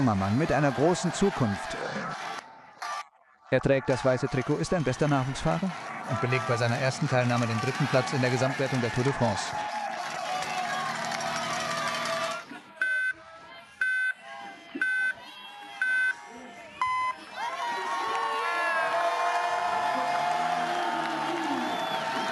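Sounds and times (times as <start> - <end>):
speech: 0.0 - 1.8, 3.5 - 9.8
outdoor crowd cheering at cycling time trial start: 0.0 - 22.3
electronic countdown beeps at cycling time trial start: 12.8 - 13.2, 13.8 - 14.2, 14.8 - 15.2, 15.8 - 16.2, 16.8 - 17.2.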